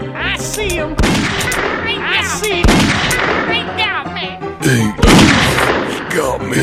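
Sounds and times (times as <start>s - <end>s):
people shouting excitedly: 0.2s - 1.0s, 1.7s - 4.4s
gunshots: 0.7s - 4.0s, 5.0s - 6.4s.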